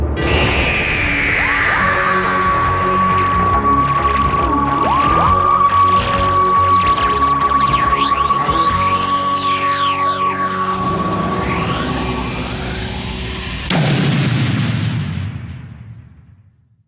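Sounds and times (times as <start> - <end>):
loud broadband blast of a destroyed science-fiction alien vessel: 0.2 - 5.3, 13.5 - 16.5
swooping electronic tones and whines of a science-fiction alien vessel: 0.3 - 13.3.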